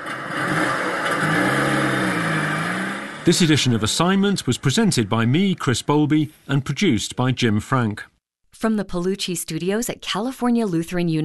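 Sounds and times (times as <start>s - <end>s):
petrol car engine revving: 0.0s - 7.1s
speech: 3.2s - 11.2s.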